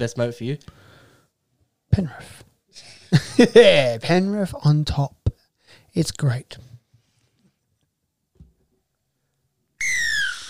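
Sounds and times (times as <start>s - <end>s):
speech: 0.0s - 0.9s, 1.9s - 5.2s, 6.0s - 6.7s
laughter: 2.9s - 3.8s
loud shrill whistle blast: 9.8s - 10.4s.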